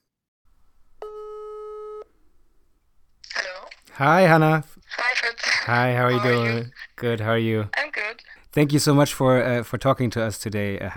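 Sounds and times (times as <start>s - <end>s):
outgoing phone call telephone ringing tone: 1.0s - 2.1s
speech: 4.0s - 5.0s, 5.6s - 7.8s, 8.5s - 10.9s.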